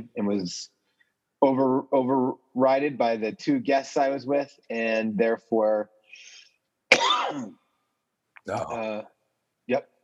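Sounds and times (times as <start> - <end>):
speech: 0.0 - 0.8, 1.4 - 6.3, 7.3 - 7.6, 8.4 - 9.1, 9.7 - 9.9
person coughing: 6.9 - 7.6.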